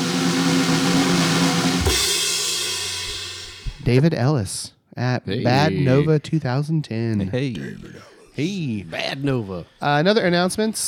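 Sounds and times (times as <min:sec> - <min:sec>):
shimmering cymbal crash: 0:00.0 - 0:03.9
drumroll: 0:00.0 - 0:04.0
speech: 0:03.9 - 0:10.8.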